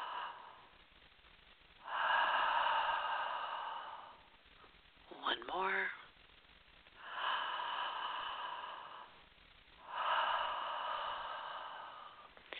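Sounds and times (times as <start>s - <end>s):
slow deep breathing: 0.0s - 1.0s, 1.8s - 4.8s, 7.0s - 12.5s.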